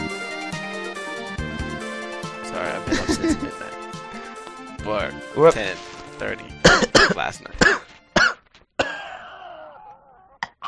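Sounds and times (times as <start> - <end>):
speech: 2.6 - 3.7, 4.9 - 7.9
laughter: 2.7 - 3.7
person coughing: 6.6 - 9.4.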